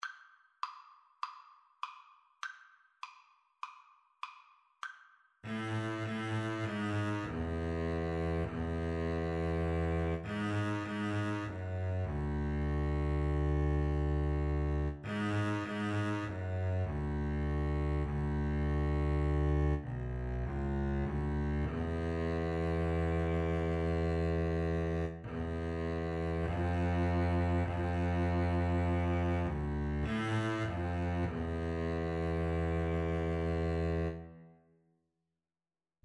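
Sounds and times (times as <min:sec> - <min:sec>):
double bass duet: 0:05.5 - 0:34.3.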